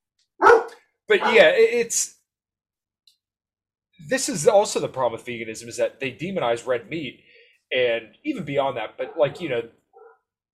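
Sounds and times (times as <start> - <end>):
dog barking and yelping: 0.4 - 1.5, 9.0 - 10.3
speech: 1.1 - 2.2, 4.0 - 9.8.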